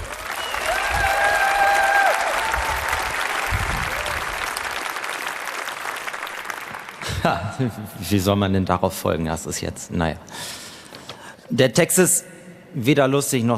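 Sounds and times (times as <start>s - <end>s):
audience applause at a poetry slam: 0.0s - 7.2s
speech: 7.2s - 10.6s, 11.5s - 13.5s.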